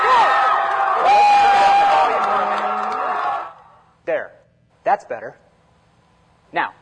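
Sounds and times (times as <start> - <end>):
individual whoops and loud yells: 0.0 - 3.5
dense stadium crowd at a football game roaring: 0.0 - 3.7
speech: 4.9 - 5.5, 6.5 - 6.8.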